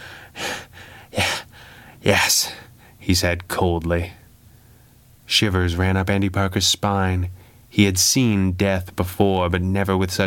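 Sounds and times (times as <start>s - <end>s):
man gasping for breath: 0.0s - 2.0s
speech: 2.0s - 4.2s, 5.3s - 10.2s.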